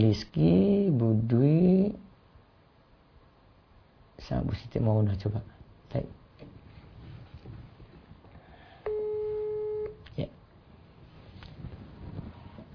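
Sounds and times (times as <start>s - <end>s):
speech: 0.0s - 2.1s, 4.3s - 6.2s
faint noisy room background: 0.0s - 12.7s
buzzy telephone ringback tone while calling: 8.9s - 10.0s.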